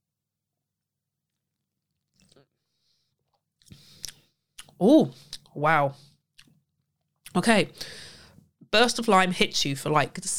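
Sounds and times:
person sipping gin: 1.9s - 5.5s
wet mouth sounds and lip smacks from tasting gin: 3.6s - 5.5s, 6.4s - 6.6s
speech: 4.8s - 6.1s, 7.4s - 8.1s, 8.7s - 10.3s.

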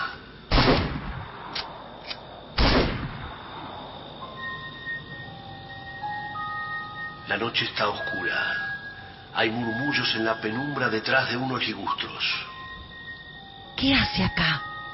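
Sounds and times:
rifle shots fired into the air outdoors at night: 0.5s - 1.7s, 2.6s - 3.4s
faint steady high-pitched tones: 3.3s - 14.9s
speech: 7.3s - 8.7s, 9.4s - 12.5s, 13.8s - 14.7s.

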